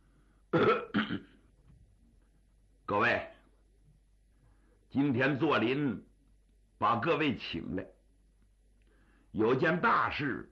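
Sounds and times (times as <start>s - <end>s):
man clearing his throat: 0.5s - 1.4s
speech: 2.9s - 3.3s, 4.9s - 6.1s, 6.8s - 8.0s, 9.3s - 10.4s.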